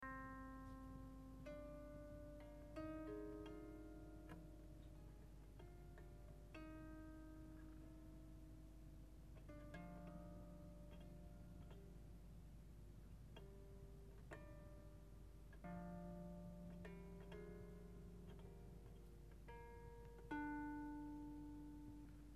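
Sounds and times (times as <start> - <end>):
harp: 0.0 - 22.3.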